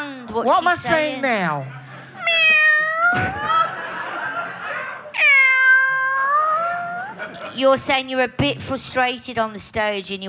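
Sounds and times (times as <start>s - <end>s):
speech: 0.4s - 1.8s, 3.1s - 3.5s, 7.6s - 10.2s
laughter: 1.4s - 5.2s, 6.4s - 7.8s
person imitating cat meows: 2.2s - 3.6s, 5.2s - 7.1s.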